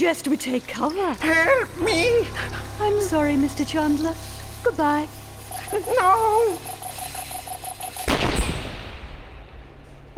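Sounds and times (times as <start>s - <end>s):
speech: 0.0s - 6.7s
short high electronic beeps: 5.5s - 8.2s
bomb explosion: 8.1s - 9.7s.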